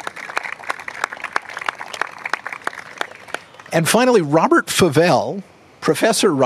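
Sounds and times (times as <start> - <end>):
louder closer claps at an even rhythm: 0.0 - 3.8
audience applause: 0.0 - 3.9
speech: 3.7 - 6.4.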